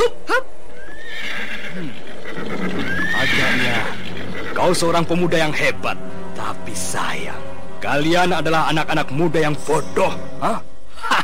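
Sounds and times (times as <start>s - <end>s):
horse neighing: 0.8s - 5.1s
speech: 4.7s - 10.7s.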